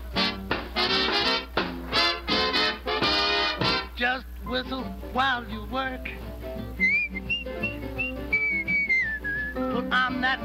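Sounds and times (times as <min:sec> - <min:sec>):
full musical backing: 0:00.0 - 0:10.4
speech: 0:04.5 - 0:06.6, 0:09.9 - 0:10.4
person whistling a bright cheerful melody: 0:06.8 - 0:09.8.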